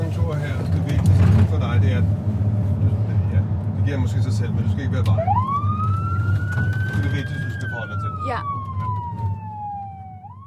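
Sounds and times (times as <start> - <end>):
steady low engine rumble of a van: 0.0 - 10.4
speech: 3.9 - 5.4, 6.6 - 8.6
emergency vehicle siren on a large van in ambulance colours: 5.0 - 10.4.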